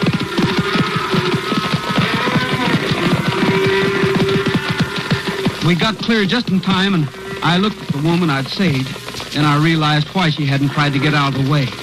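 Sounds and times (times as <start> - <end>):
low animal calls: 0.0 - 6.3
many hooves pounding the ground: 0.0 - 11.8
speech: 5.7 - 11.8.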